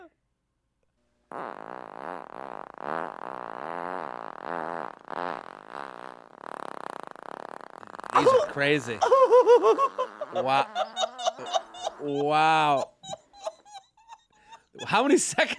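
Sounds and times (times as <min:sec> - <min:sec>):
speech: 0:01.3 - 0:02.0, 0:08.2 - 0:12.9, 0:14.9 - 0:15.5
long fluttering fart: 0:01.3 - 0:09.0, 0:09.6 - 0:12.1
laughter: 0:08.2 - 0:15.5.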